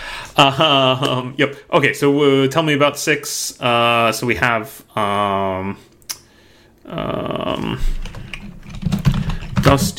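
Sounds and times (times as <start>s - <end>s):
speech: 0.4s - 5.9s, 6.9s - 8.2s, 9.6s - 9.9s
typing on a computer keyboard: 8.0s - 9.9s.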